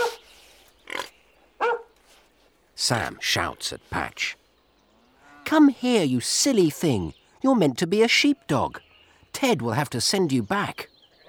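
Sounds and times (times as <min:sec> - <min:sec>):
pig grunting on a farm: 0:00.0 - 0:01.3
speech: 0:02.8 - 0:04.4, 0:05.5 - 0:10.9.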